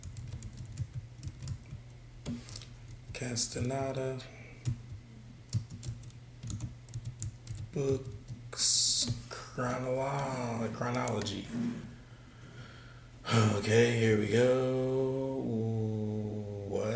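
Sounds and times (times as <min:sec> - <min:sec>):
typing on a computer keyboard: 0:00.0 - 0:03.8, 0:04.6 - 0:08.4
low hum: 0:00.0 - 0:16.9
speech: 0:03.2 - 0:04.8, 0:07.8 - 0:08.2, 0:09.0 - 0:11.9, 0:13.3 - 0:15.6.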